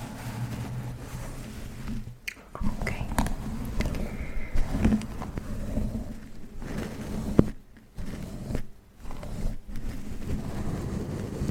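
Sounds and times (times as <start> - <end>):
fingers scratching and rubbing hair in a hair massage: 0.0 - 11.4.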